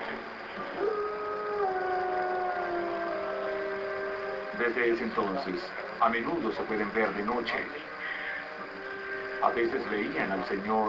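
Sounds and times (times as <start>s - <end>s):
dog howling: 0.6s - 4.6s
speech: 4.6s - 7.9s, 9.4s - 10.8s.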